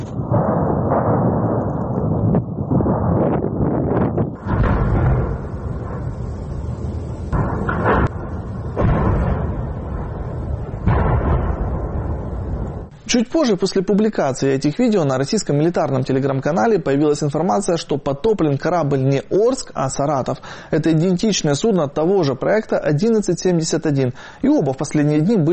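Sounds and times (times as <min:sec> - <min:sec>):
continuous low roar: 0:00.0 - 0:13.0
heavy explosions booming at a port: 0:00.0 - 0:13.9
speech: 0:13.1 - 0:25.5.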